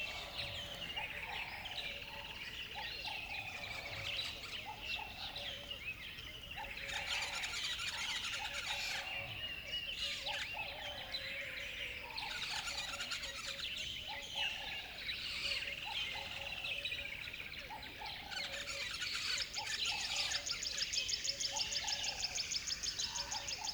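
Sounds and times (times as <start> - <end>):
dawn bird chorus in a river bed: 0.0 - 23.7.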